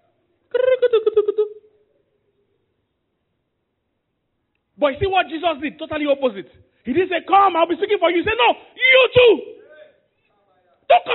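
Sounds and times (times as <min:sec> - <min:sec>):
person imitating a cuckoo-like bird call: 0:00.5 - 0:01.7
speech: 0:04.8 - 0:09.6, 0:10.9 - 0:11.1.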